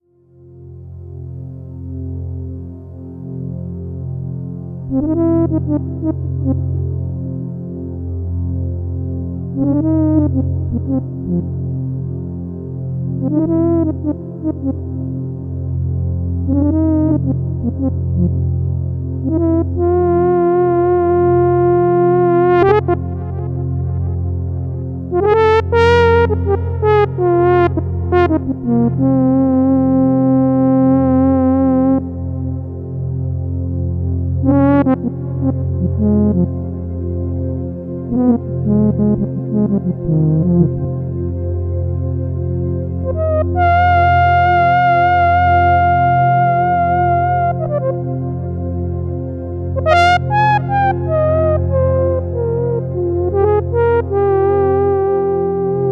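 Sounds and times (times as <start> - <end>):
Juno-60 and JD-800 synthesizers: 0.0 - 55.9.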